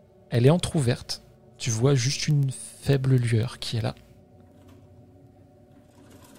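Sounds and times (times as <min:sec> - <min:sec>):
speech: 0:00.3 - 0:04.0
sewing machine running: 0:05.8 - 0:06.3.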